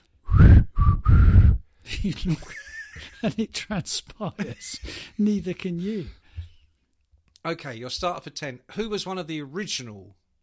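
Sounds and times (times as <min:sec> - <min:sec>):
person attempting to whistle with breathy bursts: 0:00.2 - 0:01.6
short voiced laugh or murmur: 0:01.9 - 0:05.8
speech: 0:02.0 - 0:06.2, 0:07.4 - 0:10.2.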